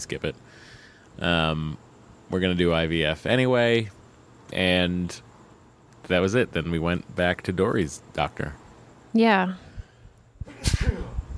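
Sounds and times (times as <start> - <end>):
speech: 0.0 - 5.3, 6.0 - 8.6, 9.2 - 9.7
person sneezing: 10.4 - 11.2.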